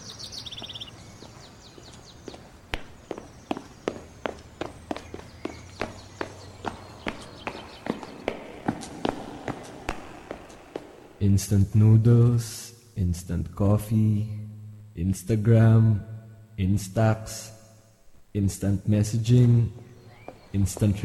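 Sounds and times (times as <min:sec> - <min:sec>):
bird chirps: 0:00.0 - 0:11.2, 0:19.1 - 0:21.0
footsteps of a person running off: 0:00.1 - 0:11.2, 0:19.7 - 0:21.0
speech: 0:11.3 - 0:14.4, 0:15.0 - 0:17.6, 0:18.3 - 0:19.8, 0:20.5 - 0:21.0.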